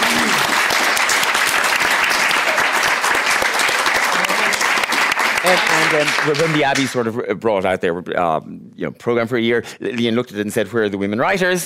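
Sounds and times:
room full of people clapping: 0:00.0 - 0:07.1
speech: 0:05.5 - 0:11.6.

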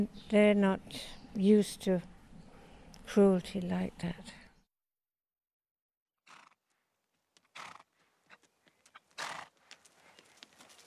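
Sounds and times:
speech: 0:00.0 - 0:02.1, 0:03.1 - 0:04.4
steeplechaser racehorse snorting: 0:06.2 - 0:06.6, 0:07.5 - 0:08.4, 0:09.1 - 0:09.5
steeplechaser racehorse ambling with soft hoof steps: 0:06.7 - 0:10.8.

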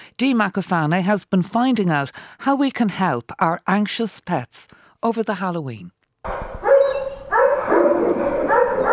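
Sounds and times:
speech: 0:00.2 - 0:06.4
several dogs barking and yelping at an animal shelter: 0:06.3 - 0:08.9.

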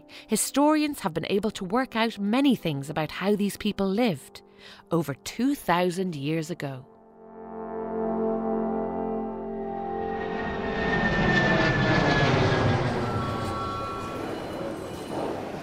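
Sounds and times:
speech: 0:00.2 - 0:06.9
airplane engine roar at a busy airport: 0:08.2 - 0:15.6.

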